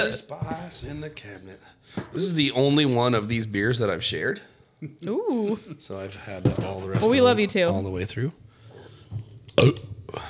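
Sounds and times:
speech: 0:00.0 - 0:08.4, 0:09.1 - 0:10.2
loud throaty burp: 0:09.5 - 0:10.2.

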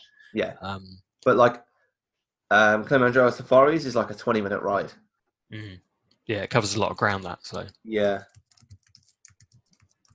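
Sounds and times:
speech: 0:00.3 - 0:01.7, 0:02.5 - 0:08.4
fast typing on a computer keyboard: 0:07.5 - 0:10.1.

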